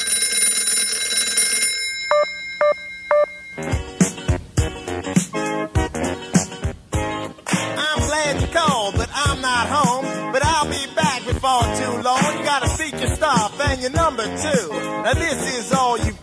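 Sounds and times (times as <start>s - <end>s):
telephone ringing: 0.0s - 3.8s
music on an answering machine: 3.6s - 16.2s
speech: 13.0s - 16.2s.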